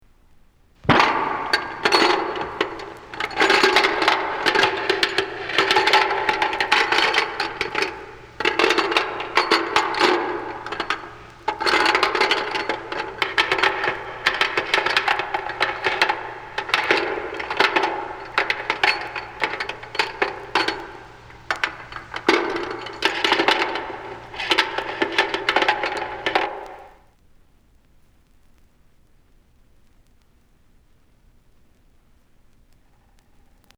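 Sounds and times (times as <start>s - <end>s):
chains rattling: 0.8s - 26.9s.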